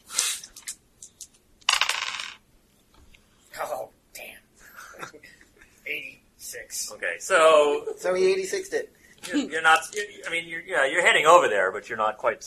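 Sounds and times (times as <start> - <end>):
dice clattering across a hard table: 0.6 - 2.4
speech: 6.6 - 12.4.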